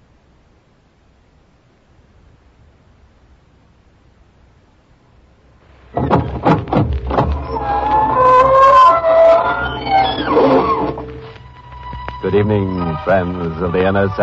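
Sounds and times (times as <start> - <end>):
knocking thumps: 5.9 - 8.2
door creaking open with a long squeal: 5.9 - 13.0
speech: 12.3 - 14.2.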